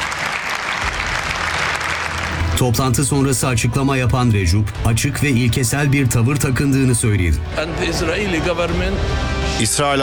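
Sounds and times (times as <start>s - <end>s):
crowd applauding in a congress hall: 0.0s - 2.9s
speech: 2.6s - 10.0s.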